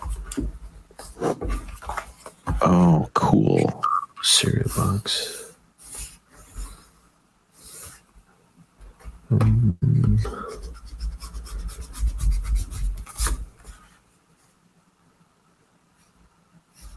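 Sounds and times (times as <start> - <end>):
speech: 2.6 - 5.4, 9.3 - 10.6
pen or pencil scratching on paper drawing a cereal box: 10.2 - 13.4.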